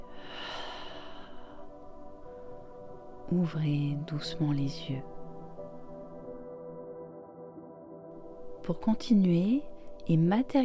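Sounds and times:
slow deep breath out during a guided relaxation exercise: 0.0 - 2.0
quiet steady tonal background: 0.0 - 10.6
speech: 3.3 - 5.1, 8.7 - 10.6.

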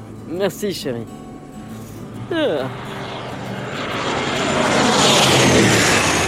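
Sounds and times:
airplane roar from landing and taxiing on a runway: 0.0 - 6.2
speech: 0.3 - 1.2, 2.3 - 3.0
descending voice-like sweep: 2.2 - 6.2.

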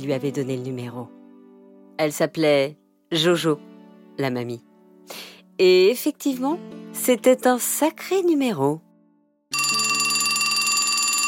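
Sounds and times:
speech: 0.0 - 1.2, 2.0 - 8.9
telephone ringing with an electronic trill: 9.5 - 11.2.

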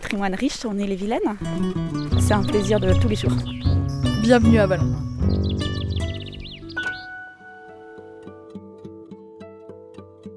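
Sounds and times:
speech: 0.1 - 5.1
several birds chirping and trilling outdoors: 1.2 - 7.6.

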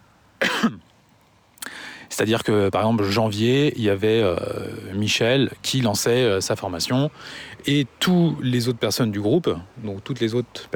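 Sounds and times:
harsh cough: 0.4 - 0.8
speech: 0.6 - 0.9, 2.2 - 10.7.

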